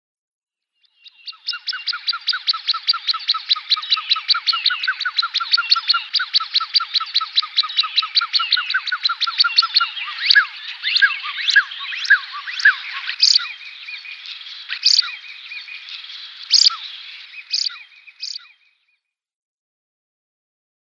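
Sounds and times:
male common shelduck whistled calls: 0:01.2 - 0:15.6, 0:16.4 - 0:18.5.

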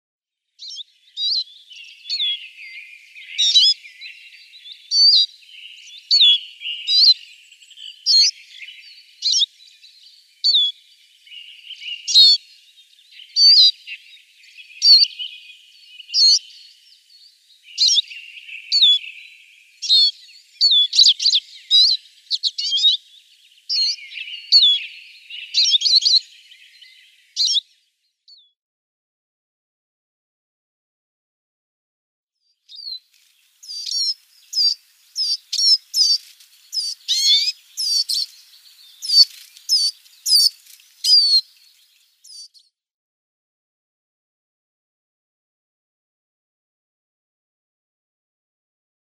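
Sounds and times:
siskin calls: 0:00.6 - 0:27.6, 0:32.7 - 0:42.7.

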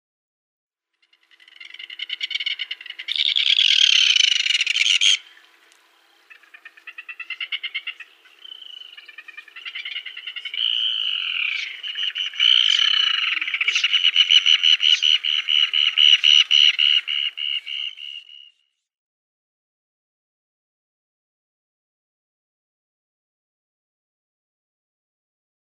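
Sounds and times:
Red-billed Tropicbird calling: 0:01.1 - 0:18.6.

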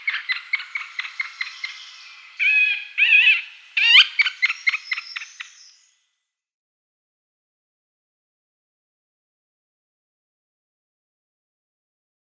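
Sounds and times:
middle spotted woodpecker display calls: 0:00.0 - 0:05.8.

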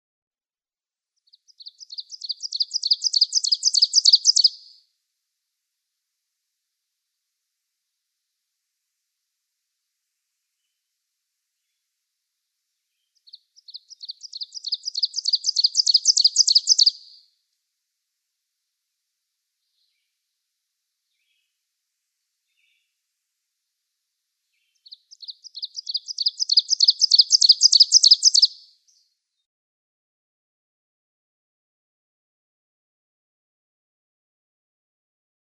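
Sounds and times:
ovenbird singing: 0:01.3 - 0:04.8, 0:13.0 - 0:17.2, 0:24.5 - 0:29.0.

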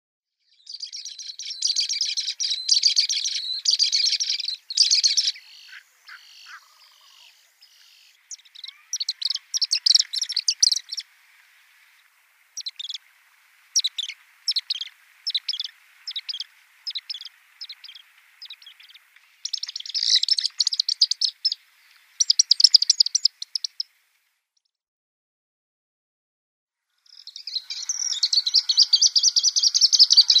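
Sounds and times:
Pied Kingfisher calling: 0:00.9 - 0:11.0, 0:12.6 - 0:13.0, 0:13.8 - 0:21.6, 0:27.2 - 0:30.3.

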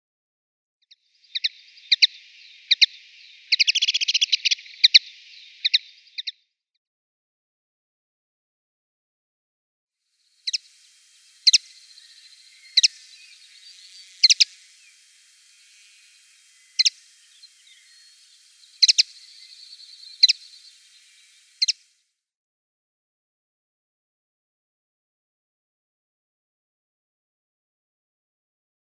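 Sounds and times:
Eurasian Linnet calls: 0:01.2 - 0:06.3, 0:10.3 - 0:21.9.

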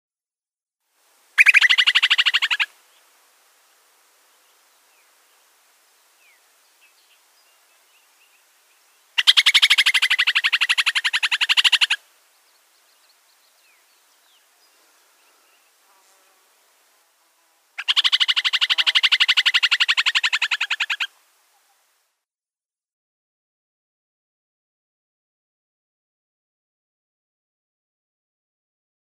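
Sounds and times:
Upland Sandpiper calls: 0:01.4 - 0:02.8, 0:09.0 - 0:12.0, 0:17.8 - 0:22.0.

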